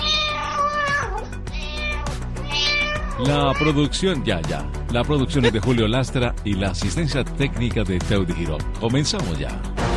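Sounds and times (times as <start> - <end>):
cat meowing: 0.0 - 3.9
speech: 3.2 - 9.8.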